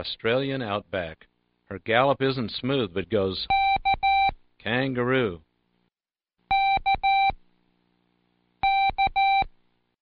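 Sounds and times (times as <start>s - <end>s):
speech: 0.0s - 3.6s, 4.6s - 5.5s
Morse code keyer beeping out the letter K: 3.5s - 4.4s, 6.5s - 7.4s, 8.6s - 9.5s.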